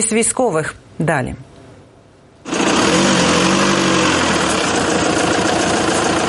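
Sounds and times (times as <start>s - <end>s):
speech: 0.0s - 1.5s
engine of a driverless remote-controlled car built as a ground drone: 2.5s - 6.2s.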